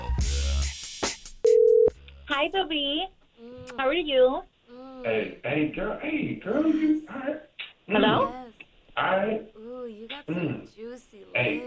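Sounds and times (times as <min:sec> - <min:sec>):
phone ringback tone on an outgoing call: 0:01.4 - 0:01.9
speech: 0:02.4 - 0:08.4, 0:09.0 - 0:11.6.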